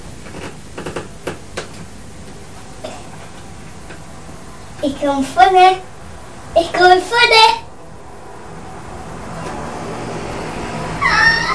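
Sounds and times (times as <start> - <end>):
speech: 4.8 - 5.9, 6.5 - 7.6
long-haired cat meowing while being groomed: 11.0 - 11.5.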